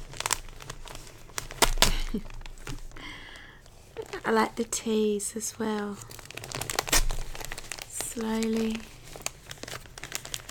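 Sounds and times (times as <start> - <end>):
gift wrapping paper tearing: 0.0 - 2.8, 6.3 - 10.4
gift wrapping paper crinkling as a gift is unwrapped: 0.0 - 10.4
speech: 2.1 - 2.4, 4.3 - 6.2, 8.2 - 8.9.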